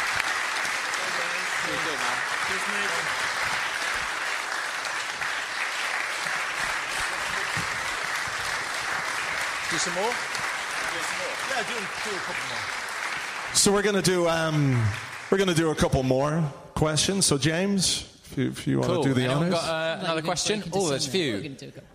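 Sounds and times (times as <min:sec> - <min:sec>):
people cheering: 0:00.0 - 0:15.7
audience clapping for a departing guest: 0:00.0 - 0:16.4
speech: 0:01.9 - 0:03.4, 0:09.7 - 0:10.4, 0:11.0 - 0:12.8, 0:13.5 - 0:21.9.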